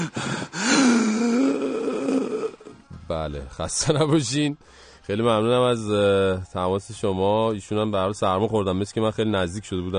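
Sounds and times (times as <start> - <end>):
person taking a deep breath before inhaling steam for a head cold: 0.0 - 1.4, 4.6 - 5.0
speech: 3.1 - 9.9.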